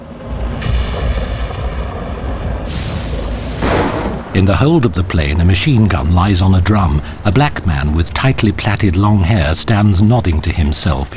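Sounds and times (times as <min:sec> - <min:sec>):
deep rolling thunder from a storm over the sea: 0:00.0 - 0:06.4
speech: 0:04.4 - 0:11.1.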